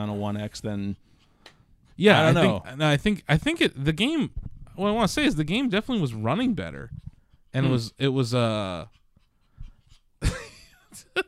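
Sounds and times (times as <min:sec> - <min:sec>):
speech: 0:00.0 - 0:09.0
excited puppy panting: 0:00.6 - 0:02.4, 0:05.6 - 0:10.2.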